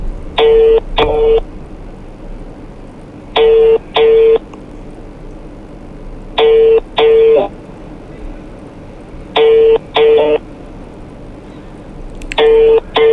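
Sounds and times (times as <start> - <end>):
unanswered phone call ringing with a double-ring pattern: 0.4 - 1.5, 3.4 - 4.5, 6.4 - 7.5, 9.4 - 10.5, 12.4 - 13.1.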